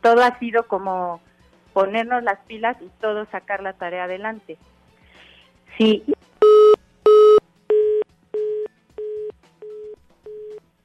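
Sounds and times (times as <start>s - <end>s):
speech: 0.0s - 4.7s, 5.8s - 6.2s
phone busy tone after a dropped call: 6.4s - 10.6s.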